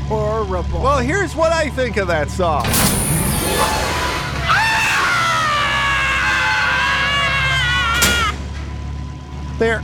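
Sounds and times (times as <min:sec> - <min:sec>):
speech: 0:00.1 - 0:04.0, 0:09.6 - 0:09.8
brief sharp cry: 0:02.7 - 0:08.5
long high-pitched human scream: 0:04.4 - 0:08.5.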